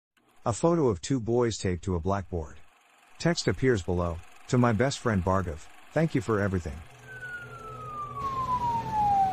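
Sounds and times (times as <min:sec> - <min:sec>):
speech: 0:00.4 - 0:02.6, 0:03.2 - 0:06.9
ambulance road and engine rumble: 0:02.2 - 0:09.3
ambulance siren on an empty highway: 0:06.9 - 0:09.3.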